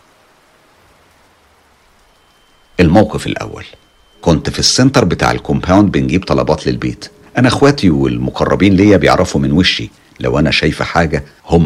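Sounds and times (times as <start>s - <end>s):
steady rain: 0.0s - 11.6s
speech: 2.8s - 11.6s.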